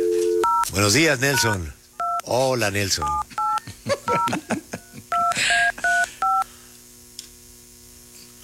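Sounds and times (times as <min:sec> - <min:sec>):
touch-tone telephone dialing beeps: 0:00.4 - 0:00.6, 0:01.3 - 0:02.2, 0:03.0 - 0:03.6, 0:05.1 - 0:06.4
speech: 0:00.8 - 0:03.4, 0:04.1 - 0:04.7.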